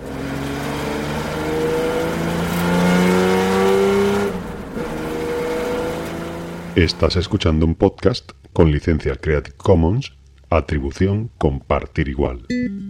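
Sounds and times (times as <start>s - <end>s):
car engine revving: 0.0s - 7.4s
speech: 6.8s - 12.8s.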